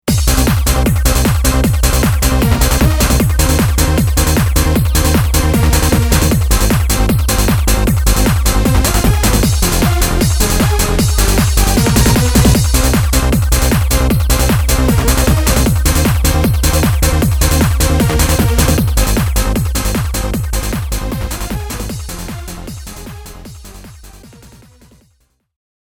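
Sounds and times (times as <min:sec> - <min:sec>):
hard house music: 0:00.0 - 0:25.0.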